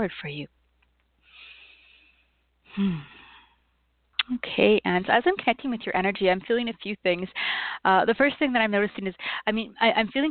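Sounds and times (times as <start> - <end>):
speech: 0.0 - 0.6, 2.8 - 3.2, 4.3 - 10.2
deep inhale through the nose: 1.2 - 3.6.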